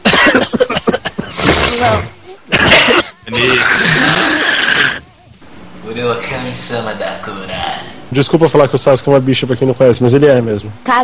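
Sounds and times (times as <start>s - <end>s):
person coughing and spluttering: 0.0s - 5.0s
speech: 6.5s - 11.0s.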